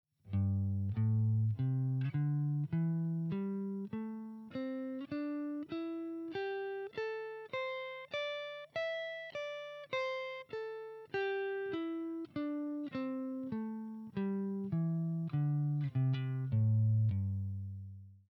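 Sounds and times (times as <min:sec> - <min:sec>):
pentatonic diagonal pattern on guitar: 0:00.3 - 0:17.9.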